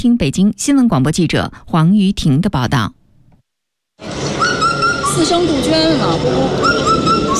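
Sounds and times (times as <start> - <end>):
speech: 0.0 - 3.0, 4.0 - 4.6, 5.2 - 7.3
whistled four-note Indian cuckoo call: 4.3 - 5.4, 6.4 - 7.3.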